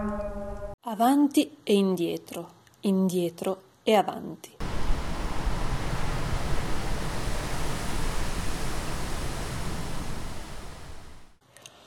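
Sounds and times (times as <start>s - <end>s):
speech: 1.0s - 4.6s
light lake wind blowing over flat water at an autumn dawn: 4.6s - 11.4s.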